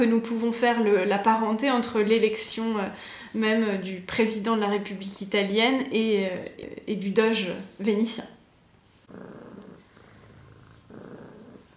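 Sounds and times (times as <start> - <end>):
speech: 0.0 - 8.4, 9.1 - 9.4
cat purring: 9.0 - 11.7.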